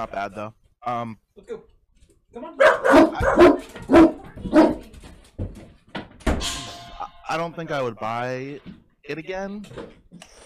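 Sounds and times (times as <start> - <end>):
speech: 0.0 - 1.7, 2.3 - 4.8, 7.3 - 10.0
dogs barking: 2.6 - 4.9.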